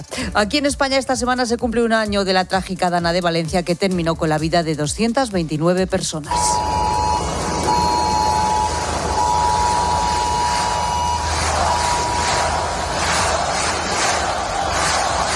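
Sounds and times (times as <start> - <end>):
speech: 0.0 - 6.9
emergency alert alarm electronic tone: 6.3 - 13.1
outdoor crowd noise: 6.3 - 15.3.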